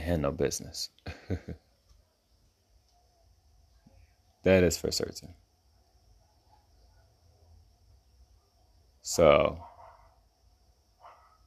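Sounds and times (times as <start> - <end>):
speech: 0.0 - 1.7, 4.4 - 5.4, 9.0 - 9.7
dog barks: 9.6 - 10.2, 11.0 - 11.4.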